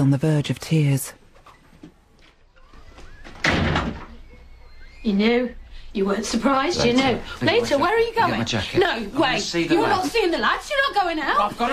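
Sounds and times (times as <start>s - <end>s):
speech: 0.0s - 1.2s, 5.0s - 11.7s
door slamming shut: 2.8s - 4.5s.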